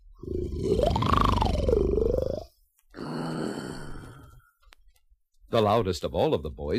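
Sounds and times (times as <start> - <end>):
loud snoring: 0.2 - 4.2
speech: 5.5 - 6.7.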